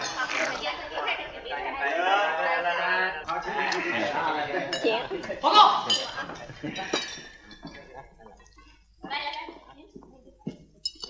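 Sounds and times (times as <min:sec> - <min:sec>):
lively group chatter: 0:00.0 - 0:11.0
laughter: 0:01.7 - 0:07.5
glasses clinking in a toast: 0:03.7 - 0:08.6, 0:10.5 - 0:11.0.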